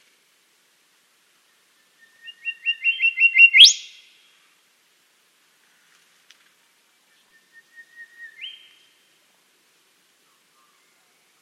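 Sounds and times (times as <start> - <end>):
Western Whistler singing in Dryandra Woodland National Park, Western Australia: 1.9 - 4.0, 7.2 - 8.9.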